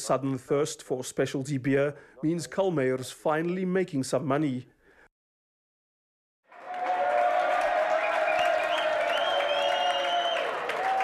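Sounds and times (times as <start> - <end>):
speech: 0.0 - 4.8
crowd applauding and cheering in a large indoor hall: 6.4 - 11.0.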